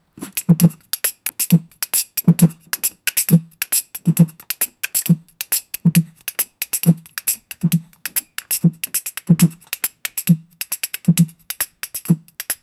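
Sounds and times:
elderly person beatboxing: 0.2s - 12.6s.

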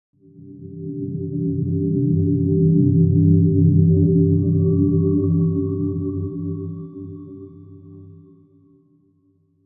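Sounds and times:
deep soft Buddhist zen music: 0.2s - 9.6s.

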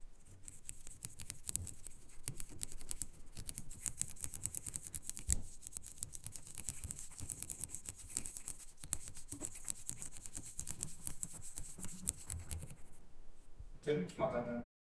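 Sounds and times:
traditional hand weaving: 0.0s - 13.6s.

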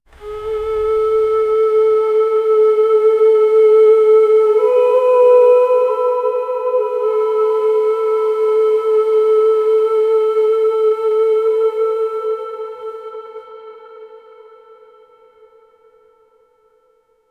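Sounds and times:
celestial veena: 0.0s - 12.9s
soft celestial flute: 0.0s - 15.0s.

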